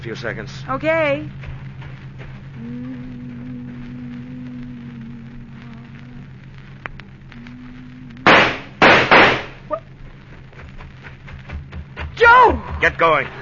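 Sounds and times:
speech: 0:00.0 - 0:01.5, 0:02.6 - 0:03.3, 0:12.8 - 0:13.4
car motor humming: 0:00.0 - 0:13.4
gunshots in a radio drama: 0:08.2 - 0:09.6.

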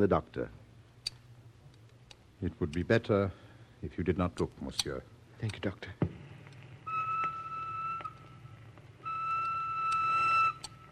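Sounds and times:
speech: 0:00.0 - 0:00.6, 0:02.4 - 0:06.0
low rumbling hum: 0:06.0 - 0:10.9
train whistle blowing: 0:06.9 - 0:08.4, 0:09.0 - 0:10.9.

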